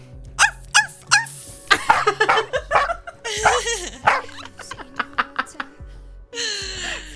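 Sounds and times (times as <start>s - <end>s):
dog barking and yipping excitedly: 0.3s - 5.6s
dog whining bark: 0.4s - 5.1s
laughter: 0.4s - 7.1s.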